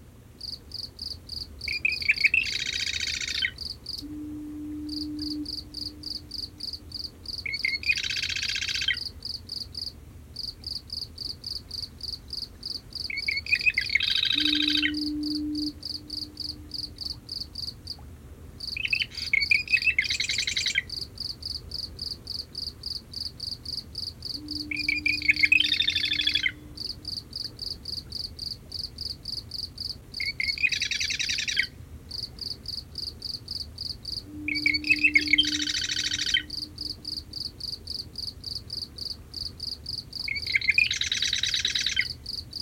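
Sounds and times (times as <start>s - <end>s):
cricket chorus at night: 0.4s - 18.0s, 18.6s - 42.6s
marsh wren singing from cattails in a salt marsh at night: 1.6s - 9.1s, 13.0s - 17.7s, 18.7s - 21.0s, 24.2s - 27.7s, 30.2s - 31.7s, 34.1s - 38.0s, 40.2s - 42.2s
faint low foghorn: 3.3s - 8.0s, 13.5s - 20.9s, 24.2s - 27.8s, 34.2s - 38.2s.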